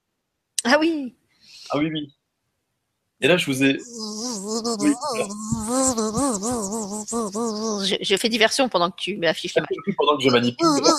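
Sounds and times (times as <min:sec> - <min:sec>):
speech: 0:00.7 - 0:02.2, 0:03.2 - 0:10.9
person imitating a buzzing fly with nasal vocal drone: 0:03.8 - 0:08.0, 0:10.5 - 0:10.9
laughter: 0:09.7 - 0:10.9.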